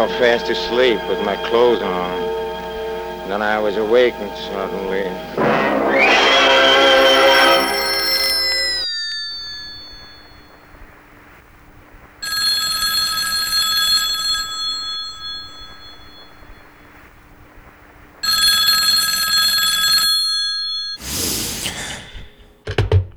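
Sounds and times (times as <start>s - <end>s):
speech: 0.0s - 2.3s, 3.3s - 6.3s
low hum: 0.0s - 8.8s
telephone ringing: 0.0s - 10.5s, 12.2s - 16.6s, 18.2s - 21.0s.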